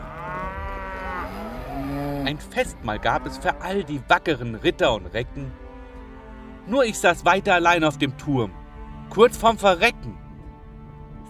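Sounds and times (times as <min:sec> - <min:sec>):
cows mooing: 0:00.0 - 0:04.8
speech: 0:02.3 - 0:05.6, 0:06.6 - 0:10.2.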